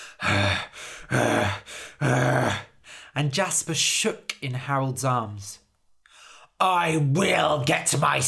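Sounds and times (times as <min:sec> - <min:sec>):
huge fairy panting heavily with an angry growl, voice-acted: 0:00.0 - 0:03.1
speech: 0:03.2 - 0:05.6, 0:06.6 - 0:08.2.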